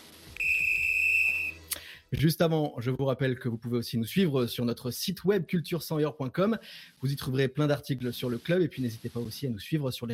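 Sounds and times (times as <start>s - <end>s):
referee whistle blown to start match: 0.4s - 1.6s
speech: 2.1s - 10.1s.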